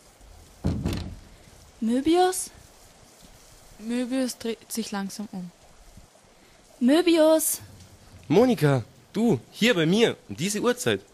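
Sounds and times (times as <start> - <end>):
door opening with a dull wooden thump: 0.6 - 1.3
speech: 1.8 - 2.6, 3.8 - 5.6, 6.8 - 7.7, 8.3 - 11.1.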